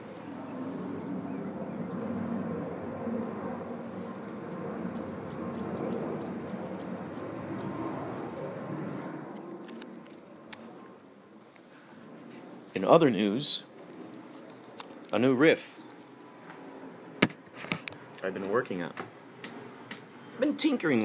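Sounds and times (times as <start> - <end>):
airplane passing overhead: 0.0 - 21.0
speech: 12.8 - 13.7, 15.1 - 15.8, 18.3 - 19.1, 20.4 - 21.0.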